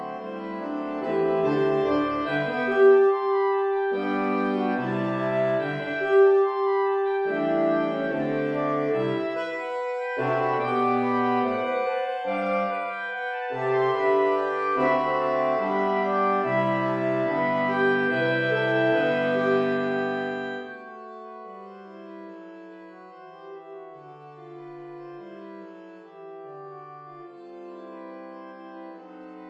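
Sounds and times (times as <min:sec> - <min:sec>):
saxophone ensemble playing: 0:00.2 - 0:20.9.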